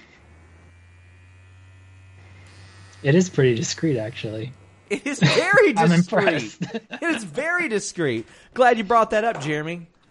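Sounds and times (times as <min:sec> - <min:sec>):
electric hair trimmer buzzing: 0:00.0 - 0:06.6
speech: 0:03.0 - 0:10.0
laughter: 0:04.9 - 0:07.5.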